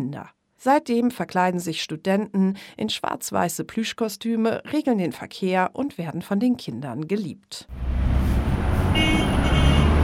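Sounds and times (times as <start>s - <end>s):
speech: 0.0s - 7.9s
minibus, car and taxi engines rumbling on a main road in La Paz, Bolivia: 7.7s - 10.0s
car horn on a main road in La Paz, Bolivia: 8.8s - 10.0s.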